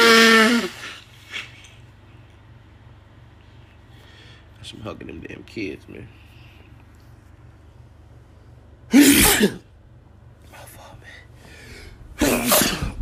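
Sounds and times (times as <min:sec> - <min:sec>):
man sneezing loudly: 0:00.0 - 0:01.5, 0:08.9 - 0:09.7, 0:12.1 - 0:13.0
speech: 0:04.7 - 0:06.2, 0:09.4 - 0:09.6.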